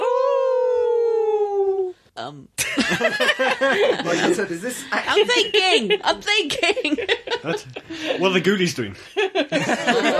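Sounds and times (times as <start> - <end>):
person imitating a werewolf howl: 0.0 - 2.0
speech: 2.2 - 10.1
laughter: 2.6 - 10.1.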